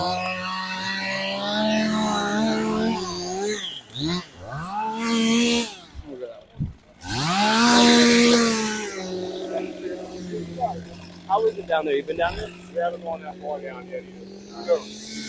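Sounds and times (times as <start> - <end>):
chainsaws cutting tree limbs and revving: 0.0 - 15.2
speech: 11.7 - 15.2.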